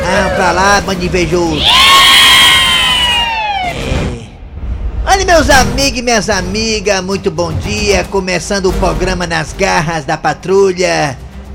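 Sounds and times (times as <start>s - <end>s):
speech: 0.1s - 2.0s, 5.2s - 11.2s
crowd booing: 1.6s - 4.0s
high drawn-out shouts or jeers: 1.6s - 4.4s.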